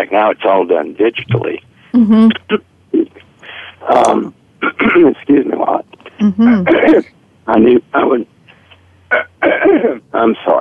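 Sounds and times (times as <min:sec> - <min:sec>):
speech: 0:00.0 - 0:02.7, 0:03.8 - 0:08.3, 0:09.1 - 0:10.5
person clearing throat: 0:04.6 - 0:05.2, 0:06.6 - 0:07.0, 0:09.1 - 0:10.0.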